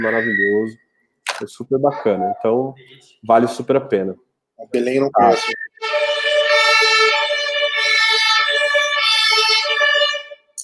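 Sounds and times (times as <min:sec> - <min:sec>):
speech: 0:00.0 - 0:00.8, 0:01.4 - 0:05.6
fire truck siren wailing: 0:05.2 - 0:10.5.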